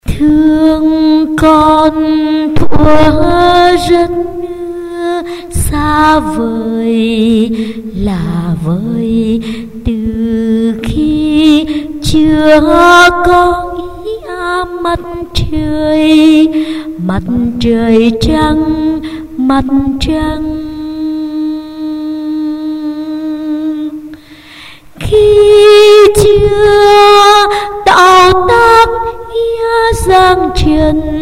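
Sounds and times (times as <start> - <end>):
solo tenor soprano voice: 0.0 - 24.3, 25.0 - 31.2.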